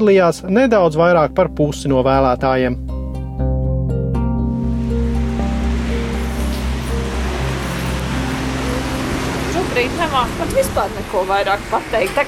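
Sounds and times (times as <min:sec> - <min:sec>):
speech: 0:00.0 - 0:03.0, 0:09.8 - 0:12.2
low humming drone: 0:02.8 - 0:12.0
rain falling on a May day in Liepāja: 0:04.7 - 0:12.2.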